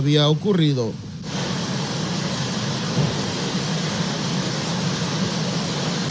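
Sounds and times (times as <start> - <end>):
speech: 0.0 - 1.1
heavy rain mixed with hail: 1.3 - 6.1.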